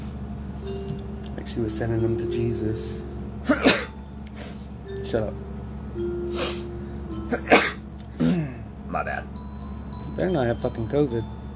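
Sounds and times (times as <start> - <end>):
faint steady hum: 0.0 - 11.5
speech: 1.5 - 3.7, 5.1 - 6.1, 10.2 - 11.4
person sneezing: 3.5 - 4.6, 7.4 - 8.6.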